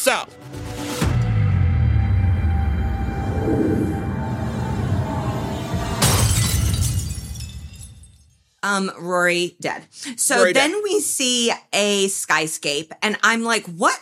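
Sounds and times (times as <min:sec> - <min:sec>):
speech: 0:00.1 - 0:00.6, 0:03.4 - 0:04.0, 0:08.6 - 0:14.0
low rumbling drone: 0:01.2 - 0:06.3
noisy crashing: 0:04.1 - 0:08.0
brandy glass dropped and shattering: 0:06.0 - 0:08.5.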